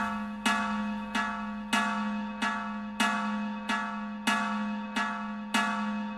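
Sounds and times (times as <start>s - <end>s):
old iron-sheet bell struck: 0.0s - 5.8s.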